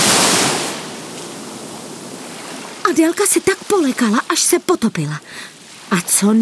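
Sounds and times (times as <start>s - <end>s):
huge geyser of water bursting from the sea as a whale surfaces: 0.0s - 4.1s
speech: 2.9s - 6.4s.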